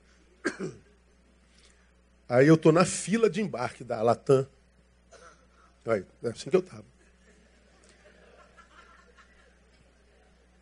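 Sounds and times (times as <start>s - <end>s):
audience member coughing: 0.4s - 0.9s, 5.1s - 5.6s
speech: 0.6s - 0.8s, 2.3s - 4.6s, 5.8s - 6.9s
laughter: 7.0s - 10.5s.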